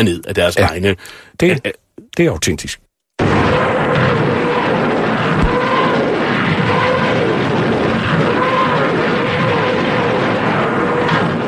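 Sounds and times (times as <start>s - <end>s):
speech: 0.0s - 2.8s
German Nebelwerfer rocket artillery firing: 3.2s - 11.4s.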